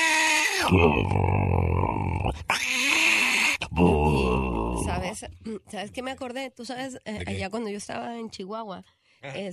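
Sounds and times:
man imitating a Bengal tiger's moan: 0:00.1 - 0:02.5, 0:03.1 - 0:05.0
speech: 0:00.7 - 0:02.6, 0:05.2 - 0:09.5.

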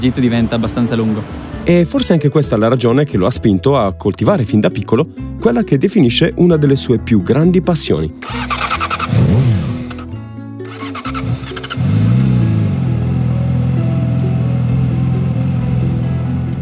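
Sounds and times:
speech: 0:00.0 - 0:08.7
motorcycle engine starting, revving and idling: 0:08.2 - 0:16.6.

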